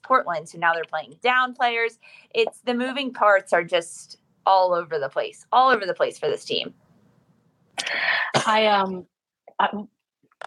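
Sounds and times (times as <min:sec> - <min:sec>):
speech: 0:00.1 - 0:06.8, 0:07.8 - 0:10.0
person coughing: 0:07.8 - 0:08.7.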